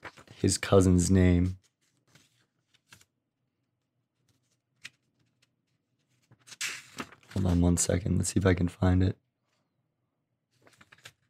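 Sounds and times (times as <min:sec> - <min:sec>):
pages turning: 0:00.0 - 0:03.2, 0:04.2 - 0:08.6, 0:10.5 - 0:11.2
speech: 0:00.4 - 0:01.6, 0:07.4 - 0:09.3.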